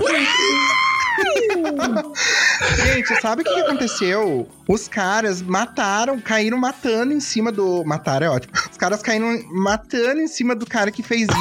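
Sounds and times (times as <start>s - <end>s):
voice imitating a thin squeaky little scream: 0.0s - 1.4s
laughter: 0.0s - 4.4s
speech: 1.8s - 11.3s.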